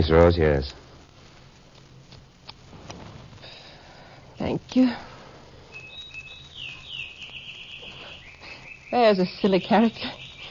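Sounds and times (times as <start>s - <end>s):
speech: 0.0s - 0.8s, 4.4s - 5.1s, 8.9s - 10.2s
low steady rumble: 0.0s - 10.4s
small bird chirping: 4.4s - 10.4s.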